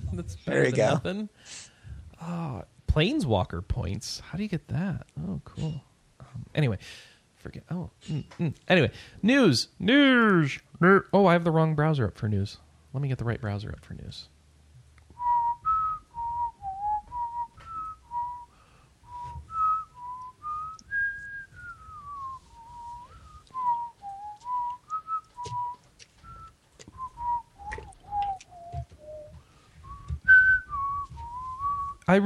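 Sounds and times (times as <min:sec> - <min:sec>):
soft low thumps: 0:00.0 - 0:00.5, 0:15.2 - 0:18.4, 0:19.1 - 0:32.0
speech: 0:00.1 - 0:14.3
person whistling quiz show countdown music: 0:15.2 - 0:18.5, 0:19.1 - 0:32.1
rustling: 0:19.1 - 0:32.0.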